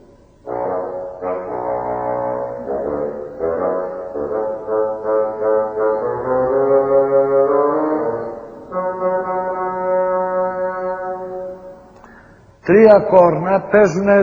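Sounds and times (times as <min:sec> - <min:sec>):
bassoon playing a stern gruff melody: 0:00.4 - 0:12.0
speech: 0:12.7 - 0:14.2.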